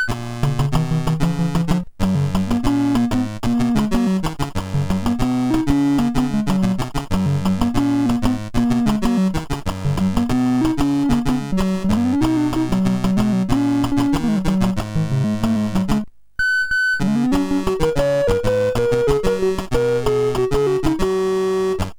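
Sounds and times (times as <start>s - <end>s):
MOS 6581 SID chip game music: 0.2s - 16.1s, 17.0s - 21.9s.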